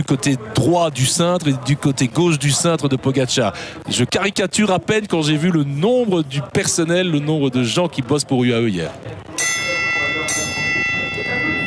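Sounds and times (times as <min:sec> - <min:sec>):
speech: 0:00.0 - 0:09.6
bell struck with a bright sustained metallic tone: 0:09.3 - 0:11.6.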